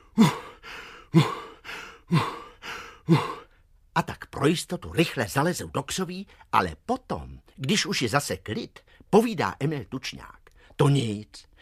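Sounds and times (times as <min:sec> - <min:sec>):
narrator imitating heavy panting: 0:00.0 - 0:03.6
speech: 0:04.4 - 0:11.6.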